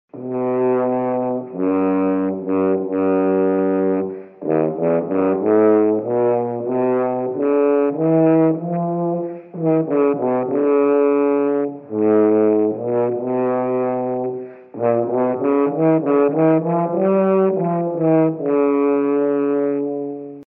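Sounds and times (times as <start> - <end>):
tuba playing: 0.1 - 20.4.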